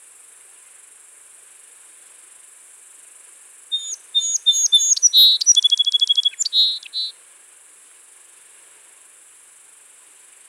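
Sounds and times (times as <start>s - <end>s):
song sparrow Melospiza melodia singing: 3.7s - 7.1s.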